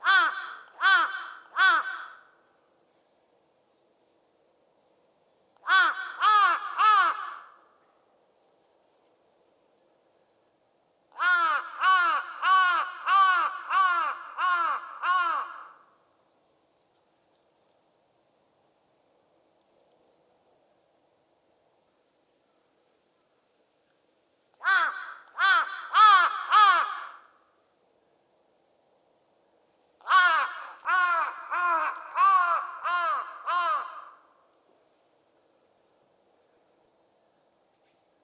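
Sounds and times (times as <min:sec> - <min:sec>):
crow cawing in the evening: 0:00.0 - 0:02.4, 0:05.7 - 0:07.6, 0:11.2 - 0:16.0, 0:24.6 - 0:27.4, 0:30.0 - 0:34.4.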